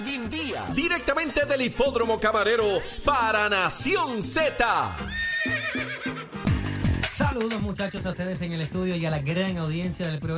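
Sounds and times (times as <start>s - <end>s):
speech: 0.2s - 5.2s, 7.2s - 10.3s
horse neighing: 5.0s - 6.5s.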